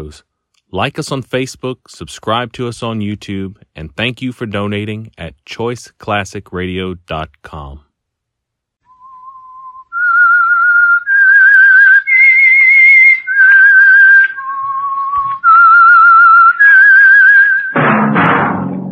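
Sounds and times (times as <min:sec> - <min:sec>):
speech: 0:00.0 - 0:07.8
whistled theme melody: 0:08.8 - 0:17.8.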